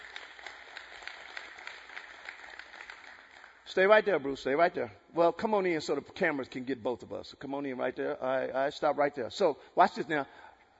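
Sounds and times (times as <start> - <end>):
crowd applauding: 0.0 - 3.7
speech: 3.7 - 10.5.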